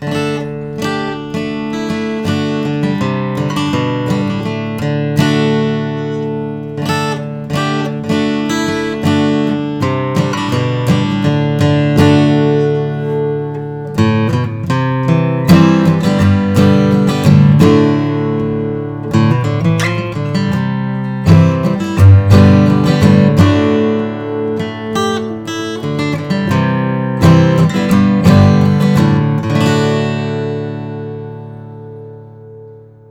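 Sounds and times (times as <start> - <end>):
Martin custom J 45 alpine bearclaw guitar playing: 0.0 - 33.1.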